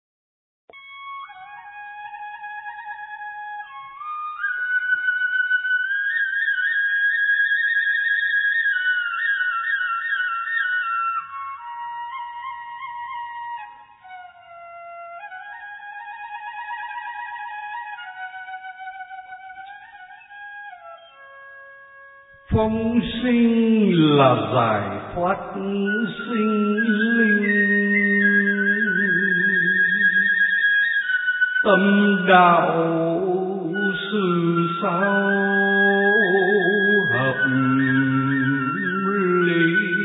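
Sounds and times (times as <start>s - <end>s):
bamboo flute playing a slow flowing melody: 0.7s - 40.0s
speech: 22.6s - 27.6s, 31.6s - 33.2s, 34.1s - 35.5s.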